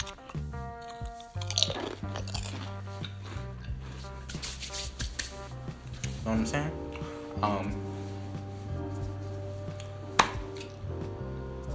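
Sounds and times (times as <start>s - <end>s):
crunching and chewing food in an ASMR eating session: 0.0s - 4.2s
steady tonal background: 0.0s - 11.7s
speech: 6.3s - 6.8s, 7.4s - 7.9s.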